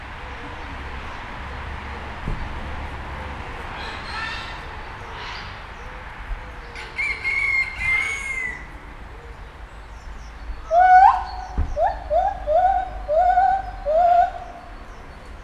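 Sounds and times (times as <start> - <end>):
car traffic: 0.0 - 15.4
captive white-handed gibbon whooping hoots at a zoo in Hungary: 10.7 - 14.8.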